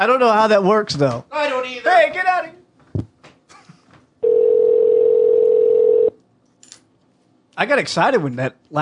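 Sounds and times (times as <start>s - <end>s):
speech: 0.0s - 2.6s, 7.6s - 8.8s
telephone dial tone: 4.2s - 6.1s.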